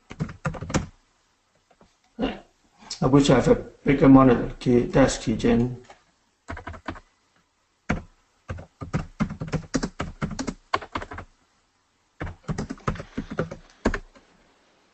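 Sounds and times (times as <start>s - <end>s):
fingers typing on a computer keyboard: 0.0s - 0.9s, 6.5s - 7.0s, 7.9s - 11.3s, 12.2s - 14.1s
speech: 3.0s - 5.8s.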